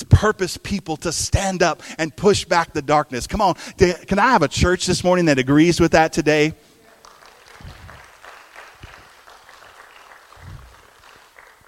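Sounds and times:
speech: 0.2 - 6.7
audience clapping in a church: 6.9 - 11.6.

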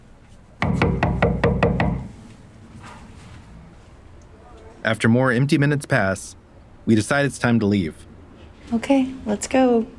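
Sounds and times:
firm knocks on a door: 0.6 - 2.2
speech: 4.8 - 8.1, 8.7 - 9.9.

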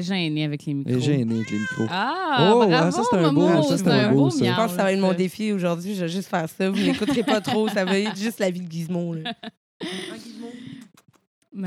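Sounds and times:
speech: 0.0 - 10.6
domestic cat meowing loudly: 1.3 - 2.0
laughter: 1.8 - 4.7, 6.7 - 10.4.

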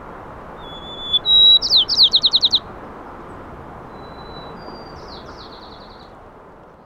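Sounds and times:
two male songbirds counter-singing with whistles and descending chirps: 0.6 - 2.7, 3.3 - 6.2.

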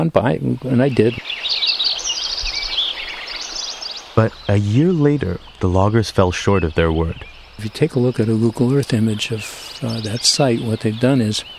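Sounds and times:
speech: 0.0 - 1.3, 4.2 - 11.5
chorus of many birds singing in a forest in spring: 0.0 - 11.5.

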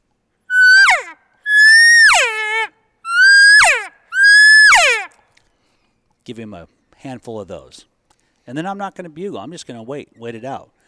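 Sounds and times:
cow elk calls blown on a hand call: 0.5 - 5.2
speech: 6.3 - 7.9, 8.5 - 10.8.

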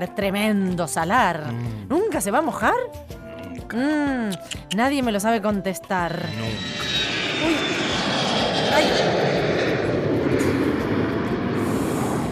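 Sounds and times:
speech: 0.0 - 7.7, 8.7 - 9.2
airplane engine roar while landing at Tucumán: 6.0 - 12.3.

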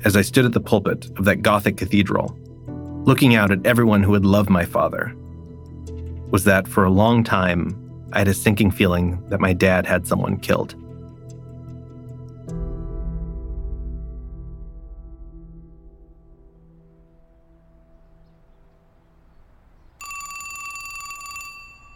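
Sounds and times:
speech: 0.0 - 5.2, 6.3 - 10.8
low droning tone: 12.6 - 18.9
telephone ringing: 20.0 - 21.9.

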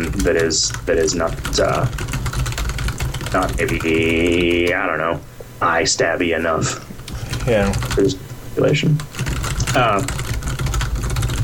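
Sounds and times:
typing on a computer keyboard: 0.0 - 4.8, 7.3 - 8.1, 9.0 - 11.4
speech: 0.2 - 2.2, 3.3 - 9.2, 9.8 - 10.2.

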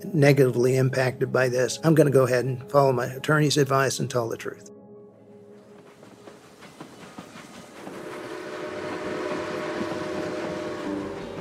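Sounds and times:
speech: 0.0 - 4.8
train rattling along the tracks with rhythmic clacking: 5.6 - 11.4
long steady steam whistle: 7.9 - 11.4.

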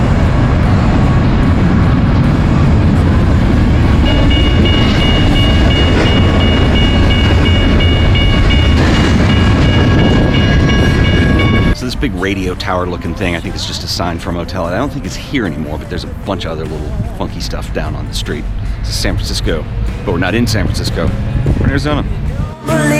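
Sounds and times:
freight railcars clattering: 0.0 - 22.0
freight train rolling past along a highway: 0.0 - 22.9
speech: 12.2 - 22.9.

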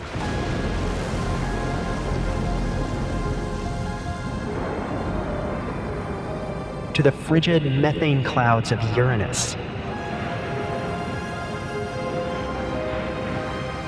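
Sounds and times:
heavy rain of an imagined storm on Saturn: 0.0 - 8.8, 9.4 - 13.8
faint droning tones: 0.0 - 13.8
rumbling noise of an imagined storm on Saturn: 0.0 - 13.8
speech: 7.0 - 9.7.

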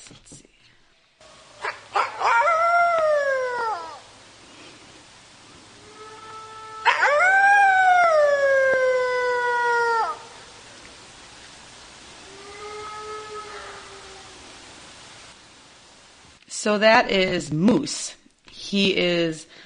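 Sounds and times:
red wolf howling: 1.3 - 4.1, 5.7 - 10.7, 12.2 - 14.8
speech: 16.6 - 19.5.

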